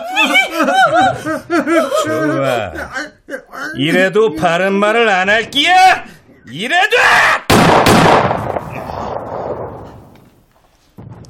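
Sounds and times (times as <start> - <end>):
laughter: 0.0 - 4.5
speech: 1.1 - 3.1, 3.8 - 8.3
loud gunshots with echoes: 7.5 - 10.1.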